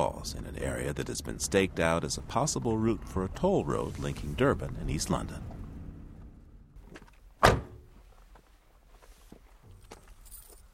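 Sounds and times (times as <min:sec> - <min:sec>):
speech: 0:00.0 - 0:05.5
truck door slamming shut: 0:07.4 - 0:07.9.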